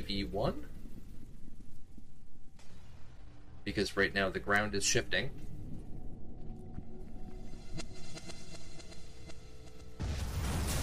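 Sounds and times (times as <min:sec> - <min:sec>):
low continuous rumble: 0:00.0 - 0:10.8
speech: 0:00.1 - 0:00.8, 0:03.6 - 0:05.6
loud explosion: 0:10.0 - 0:10.8.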